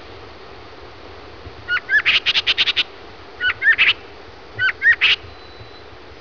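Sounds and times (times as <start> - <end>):
gray jay calling: 1.7 - 5.5.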